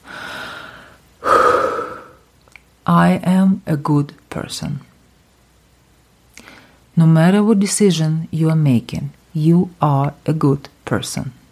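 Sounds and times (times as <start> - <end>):
deep belly breath inhaling and exhaling: 0.0 - 2.2
speech: 2.9 - 4.9, 7.0 - 11.4.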